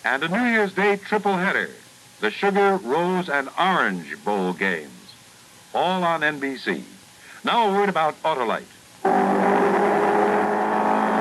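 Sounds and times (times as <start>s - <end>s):
speech: 0.0s - 5.0s, 5.7s - 9.3s
Ford Mark IV race car engine roaring at high revs: 9.1s - 11.1s.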